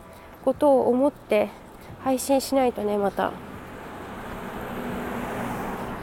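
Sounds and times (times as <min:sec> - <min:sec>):
speech: 0:00.4 - 0:03.5
school buses rumbling past on a road: 0:01.5 - 0:06.0.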